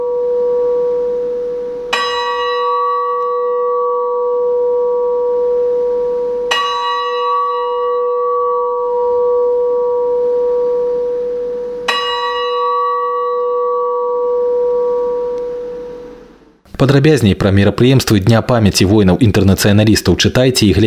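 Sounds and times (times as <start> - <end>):
large memorial bell tolling slowly: 0.0 - 16.3
speech: 16.8 - 20.8.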